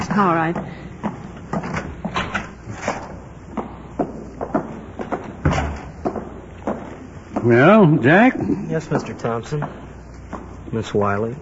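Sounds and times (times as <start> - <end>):
speech: 0.1 - 0.9, 7.4 - 9.8, 10.7 - 11.4
office side door opening and closing: 1.6 - 3.1, 5.4 - 6.0.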